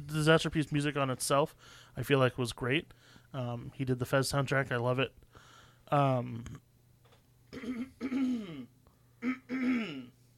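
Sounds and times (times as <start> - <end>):
speech: 0.1 - 5.3, 5.9 - 6.7, 7.5 - 10.2
person clearing throat: 7.5 - 10.2.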